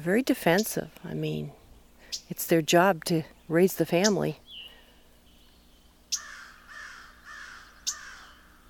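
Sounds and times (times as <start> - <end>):
speech: 0.0 - 4.4
crow cawing: 6.2 - 8.6.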